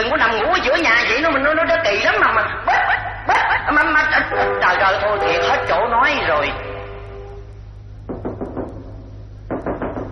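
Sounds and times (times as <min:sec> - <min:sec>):
low steady hum: 0:00.0 - 0:10.1
firm knocking on the door of a home: 0:08.1 - 0:10.1.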